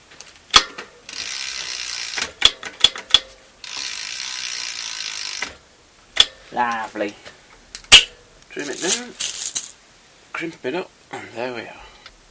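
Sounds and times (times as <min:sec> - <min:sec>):
ratchet tightening a pinch bolt on a bicycle rear brake cable: 0:00.6 - 0:05.6
speech: 0:06.5 - 0:07.3, 0:08.5 - 0:09.3, 0:10.4 - 0:11.8.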